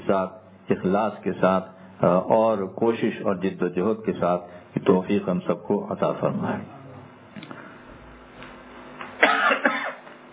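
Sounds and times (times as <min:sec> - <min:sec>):
speech: 0:00.1 - 0:06.8
person coughing: 0:09.2 - 0:10.1.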